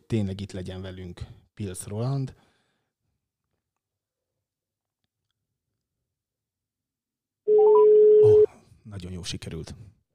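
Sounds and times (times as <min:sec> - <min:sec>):
speech: 0:00.1 - 0:02.5, 0:08.2 - 0:10.0
steady electronic telephone tone: 0:07.5 - 0:08.5.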